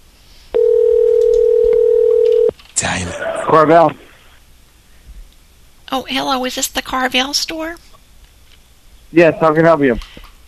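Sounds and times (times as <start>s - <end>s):
telephone dial tone: 0.6s - 2.5s
speech: 3.0s - 4.0s, 5.9s - 7.9s, 9.1s - 10.1s.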